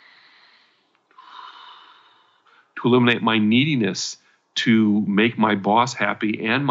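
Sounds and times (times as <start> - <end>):
person taking a deep breath during a guided release exercise: 0.0 - 2.8
speech: 2.8 - 6.6.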